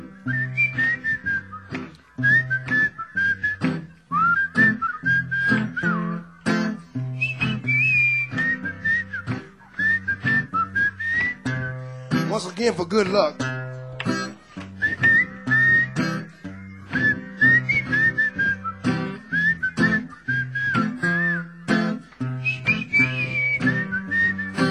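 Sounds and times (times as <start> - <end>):
group of people whistling a bright wavering melody: 0.2 - 12.4, 14.8 - 24.6
speech: 12.4 - 13.5.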